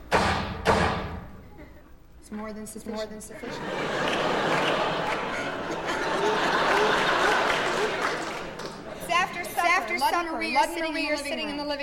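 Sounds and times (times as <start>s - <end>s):
door slamming shut: 0.1s - 1.4s
speech: 2.3s - 5.0s, 9.9s - 11.8s
laughter: 3.4s - 10.3s.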